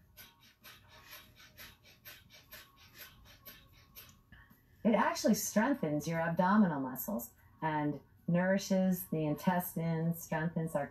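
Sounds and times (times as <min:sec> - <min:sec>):
rapid breath-of-fire breathing through nostrils: 0:00.0 - 0:04.7
speech: 0:04.8 - 0:10.8.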